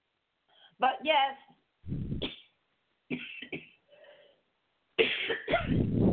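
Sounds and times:
speech: 0.8 - 1.6
person coughing from a dry itchy throat: 3.1 - 3.8, 5.0 - 5.8.

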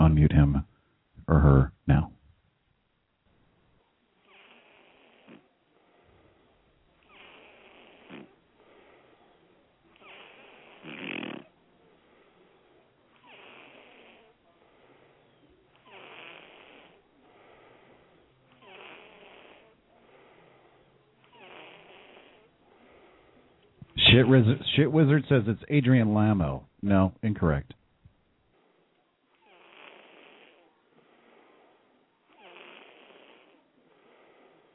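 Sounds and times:
speech: 0.1 - 0.7, 1.3 - 2.1, 24.2 - 27.8
person snoring over a narrow tinny phone line: 4.2 - 6.2, 7.0 - 25.4, 29.4 - 34.7.

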